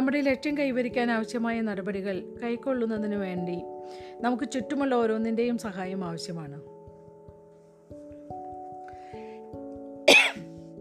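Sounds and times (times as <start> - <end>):
soft steady musical tones: 0.0 - 10.8
speech: 0.1 - 6.7
person with a cough after walking outside in the cold coughing: 10.1 - 10.5.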